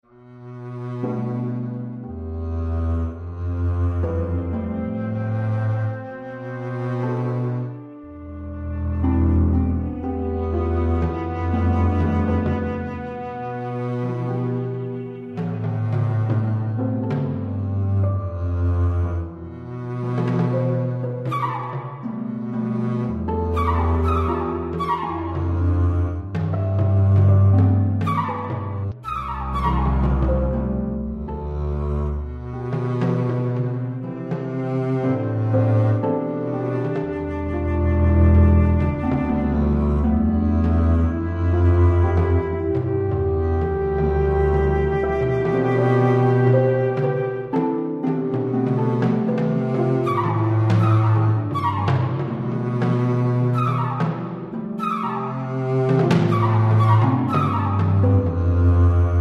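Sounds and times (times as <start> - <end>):
contrabass: 0.0 - 59.1
harp: 0.0 - 59.1
flute: 3.2 - 31.6, 32.2 - 59.1.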